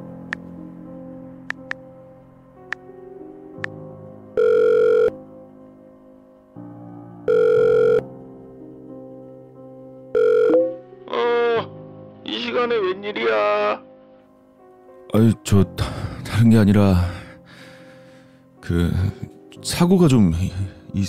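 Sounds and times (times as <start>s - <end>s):
mobile phone call ringback tone: 4.4s - 5.2s, 7.3s - 8.1s, 10.1s - 10.8s
speech: 12.6s - 13.9s, 15.1s - 17.1s, 18.7s - 21.0s.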